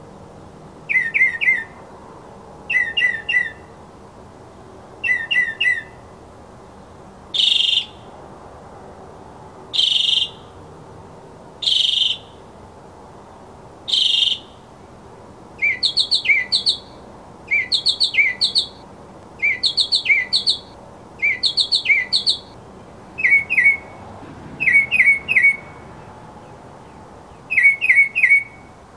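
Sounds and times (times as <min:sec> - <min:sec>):
mockingbird singing: 0:00.9 - 0:01.8, 0:02.7 - 0:03.7, 0:05.0 - 0:06.0, 0:07.4 - 0:08.0, 0:09.7 - 0:10.4, 0:11.6 - 0:12.4, 0:13.9 - 0:14.6, 0:15.6 - 0:22.6, 0:23.2 - 0:23.9, 0:24.6 - 0:25.8, 0:26.9 - 0:28.7.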